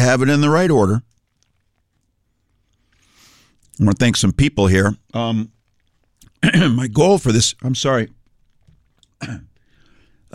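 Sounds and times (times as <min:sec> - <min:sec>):
speech: 0:00.0 - 0:01.1, 0:03.8 - 0:05.6, 0:06.4 - 0:08.2, 0:09.2 - 0:09.5
person clearing throat after eating: 0:06.4 - 0:06.8, 0:09.2 - 0:09.6.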